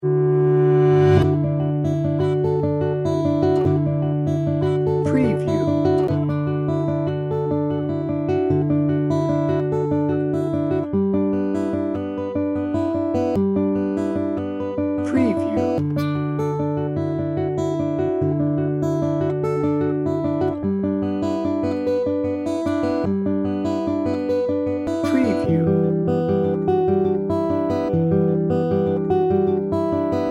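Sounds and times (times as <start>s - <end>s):
sweet and mellow guitar: 0.0s - 30.2s.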